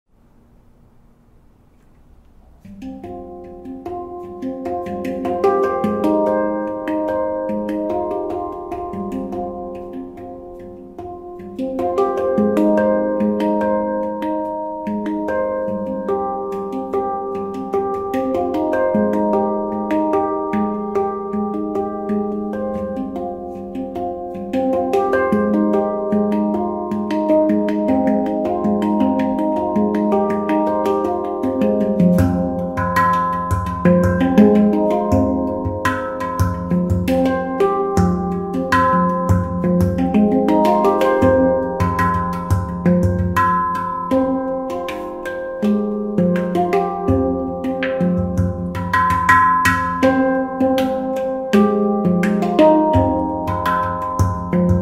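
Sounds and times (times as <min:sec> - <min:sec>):
platinum handpan with 9 notes in F minor: 0:01.7 - 0:54.8.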